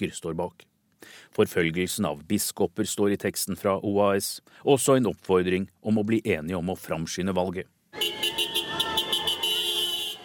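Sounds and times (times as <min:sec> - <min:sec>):
speech: 0:00.0 - 0:08.2
car horns honking in celebration: 0:08.0 - 0:10.2.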